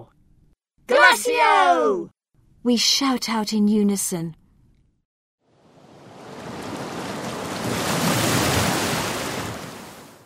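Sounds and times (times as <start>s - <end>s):
speech: 1.2s - 4.4s
huge wave crashing against an embankment: 5.6s - 10.2s.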